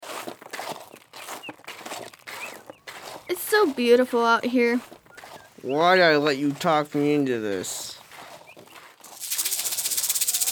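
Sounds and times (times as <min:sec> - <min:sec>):
speech: 0:03.5 - 0:05.0, 0:05.6 - 0:07.8
snake rattling: 0:09.0 - 0:10.4.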